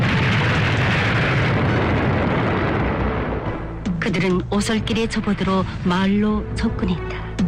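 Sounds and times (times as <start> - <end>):
artillery shells exploding on a large road near a town: 0.0 - 3.7
speech: 4.1 - 7.3.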